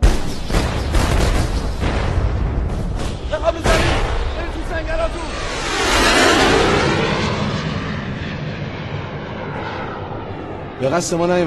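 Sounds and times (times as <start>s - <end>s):
rockets fired from an Iraqi warplane exploding: 0.0s - 8.3s
speech: 10.8s - 11.4s.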